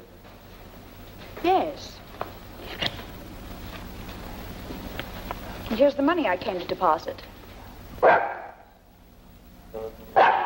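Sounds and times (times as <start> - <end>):
speech: 1.4 - 2.0, 5.7 - 7.3
dog barking: 8.0 - 8.7, 10.2 - 10.4.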